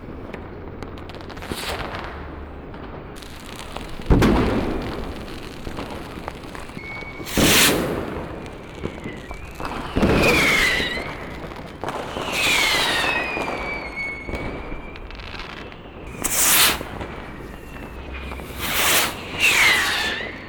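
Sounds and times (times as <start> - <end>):
short fireworks bursts: 0.0 - 20.4.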